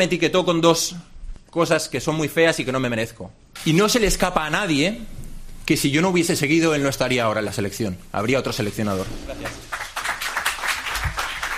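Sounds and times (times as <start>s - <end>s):
speech: 0.0s - 9.8s
family and friends applauding at a press conference in a hotel: 9.2s - 11.5s.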